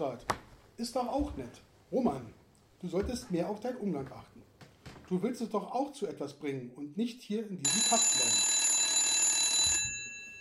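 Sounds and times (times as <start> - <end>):
speech: 0.0 - 4.5, 5.1 - 8.6
telephone ringing with a bright buzzing burst: 7.6 - 10.3.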